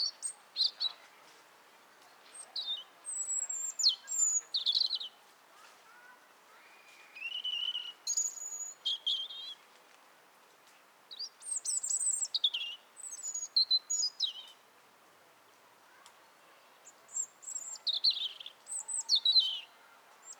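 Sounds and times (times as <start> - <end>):
European robin Erithacus rubecula singing: 0.0 - 1.0, 2.3 - 5.1, 7.2 - 9.6, 11.1 - 14.6, 16.8 - 20.3.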